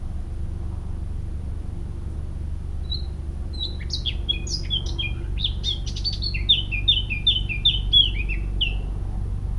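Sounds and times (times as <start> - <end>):
low background hum: 0.0 - 9.5
Eurasian blackcap (Sylvia atricapilla) singing: 2.8 - 8.9.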